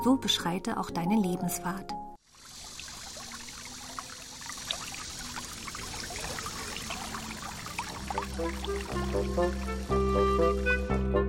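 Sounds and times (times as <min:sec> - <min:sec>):
speech: 0:00.0 - 0:02.0, 0:08.4 - 0:10.7
water babbling and trickling like a small brook: 0:02.2 - 0:10.9
sustained musical tones: 0:03.7 - 0:11.2.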